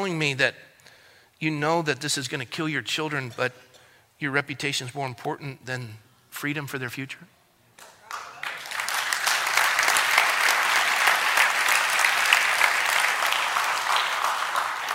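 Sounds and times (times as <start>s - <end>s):
speech: 0.0s - 0.7s, 1.4s - 7.4s
large audience applauding: 8.0s - 14.9s.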